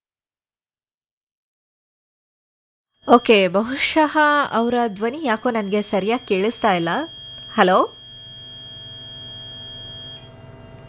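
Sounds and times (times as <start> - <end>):
speech: 3.1 - 8.0
faint telephone line noise: 3.1 - 10.8
phone call disconnect beep: 3.1 - 10.8.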